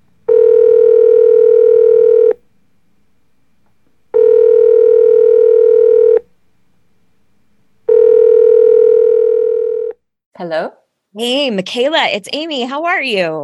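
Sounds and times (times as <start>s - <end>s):
telephone ringing on the line as a call is placed: 0.3s - 2.4s, 4.1s - 6.3s, 7.9s - 10.0s
speech: 10.4s - 13.4s.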